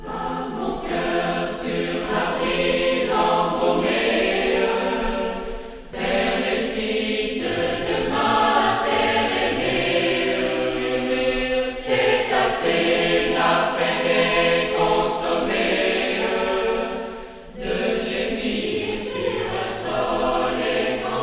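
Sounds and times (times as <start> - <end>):
chorale choir singing: 0.0 - 21.2.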